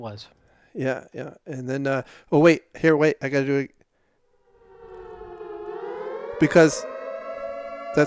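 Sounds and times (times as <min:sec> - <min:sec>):
speech: 0:00.0 - 0:03.8, 0:06.4 - 0:06.9
air raid siren wailing: 0:04.3 - 0:08.0.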